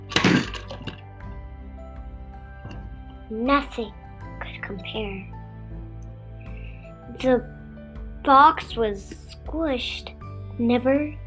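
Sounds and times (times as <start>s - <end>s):
loud crash sound effect with breaking glassy character: 0.1s - 1.0s
speech: 3.3s - 4.0s, 4.7s - 5.4s, 7.2s - 7.6s, 8.2s - 11.2s.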